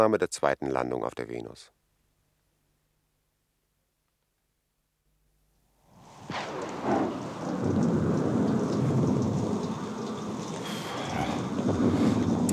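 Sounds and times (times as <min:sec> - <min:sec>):
speech: 0:00.0 - 0:01.8
hot rain pouring onto glowing sand on Venus: 0:05.9 - 0:12.5
thunder crack in a thunderstorm on Venus: 0:06.0 - 0:12.5.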